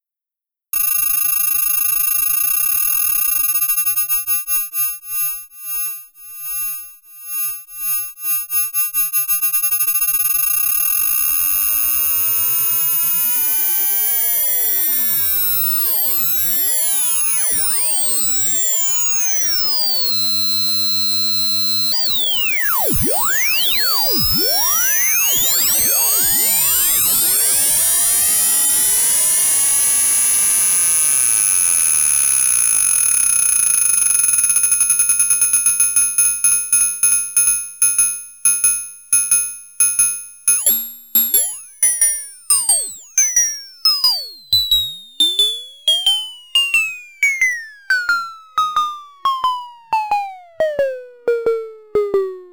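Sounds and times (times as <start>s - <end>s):
ring-modulated sine and saw synthesizer tones: 0.8s - 52.1s.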